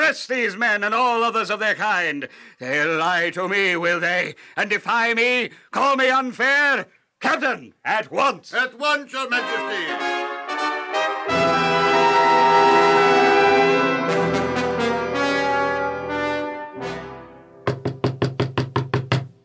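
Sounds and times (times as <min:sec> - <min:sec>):
speech: 0:00.1 - 0:10.2
loud orchestral music: 0:09.4 - 0:17.7
sharp clear knocks on a door: 0:17.7 - 0:19.4.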